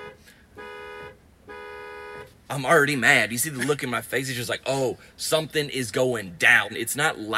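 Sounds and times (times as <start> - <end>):
car horn honking: 0.0 - 2.4
speech: 2.5 - 7.3.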